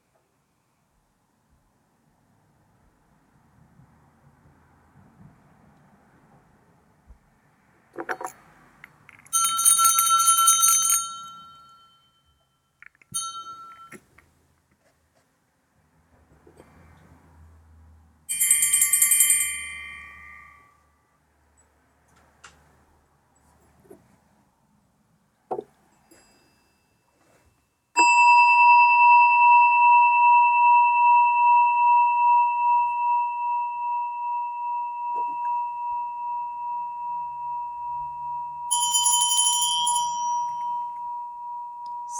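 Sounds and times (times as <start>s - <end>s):
meditation bell struck during a sound meditation: 9.3s - 14.0s, 18.3s - 21.0s, 26.0s - 27.1s, 28.0s - 42.1s.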